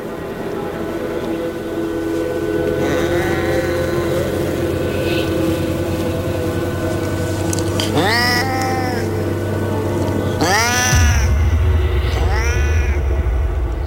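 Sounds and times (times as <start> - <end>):
steady low hum: 0.0 - 13.8
eerie cat-like meows from a strange creature: 1.4 - 13.8.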